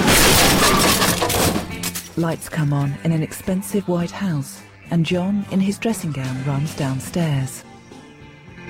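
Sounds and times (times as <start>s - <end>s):
car crashing into a fountain on a house drive: 0.0s - 2.0s
clattering debris: 0.0s - 2.4s
speech: 2.2s - 7.7s.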